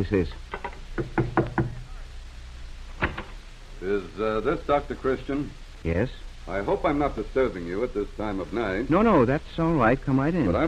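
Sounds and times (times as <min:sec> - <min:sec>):
speech: 0:00.0 - 0:01.3, 0:03.8 - 0:10.6
firm knocking on a wooden door: 0:00.5 - 0:01.8.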